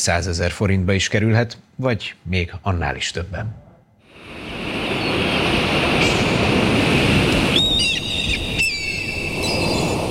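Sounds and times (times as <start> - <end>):
speech: 0.0 - 3.6
sea waves washing onto a beach on a turquoise seashore: 4.1 - 8.6
bright bird chirps: 7.5 - 10.1.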